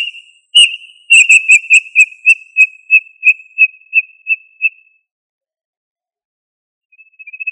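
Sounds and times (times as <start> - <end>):
tinamou whistles: 0.0 - 4.8.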